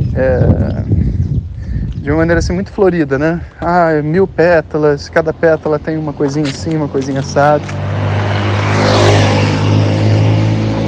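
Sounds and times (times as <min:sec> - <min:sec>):
speech: 0:00.2 - 0:00.8, 0:02.0 - 0:07.9
loud motorbike engine revving while passing by: 0:06.6 - 0:10.8.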